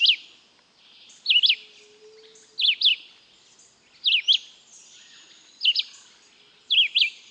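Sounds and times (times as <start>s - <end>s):
Red-eyed Vireo Vireo olivaceus singing sharp whistled phrases: 1.2s - 3.0s, 4.0s - 4.4s, 6.7s - 7.2s.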